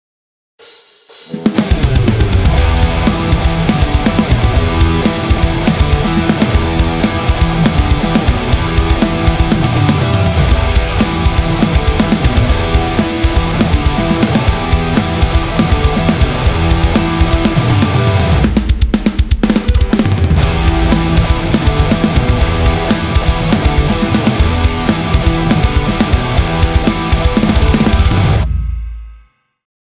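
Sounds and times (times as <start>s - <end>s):
funky metal music: 0.6s - 29.2s.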